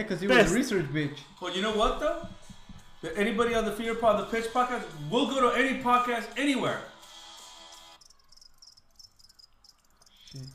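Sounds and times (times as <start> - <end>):
speech: 0.0 - 2.4, 3.0 - 6.9, 10.3 - 10.5
crickets chirping sound effect: 8.0 - 10.5.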